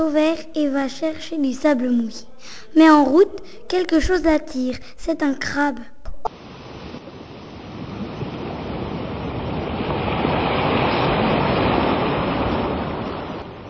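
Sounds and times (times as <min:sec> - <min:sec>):
speech: 0:00.0 - 0:05.9
big ocean wave surging and crashing: 0:06.3 - 0:13.6.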